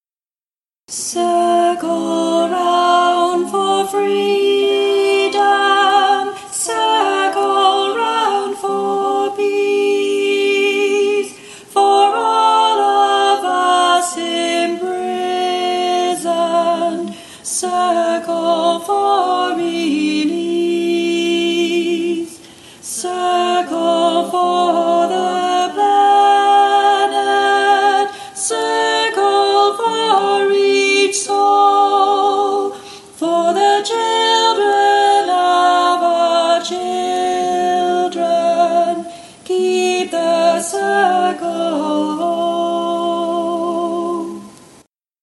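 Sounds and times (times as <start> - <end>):
soprano circle chant: 0.9 - 44.6.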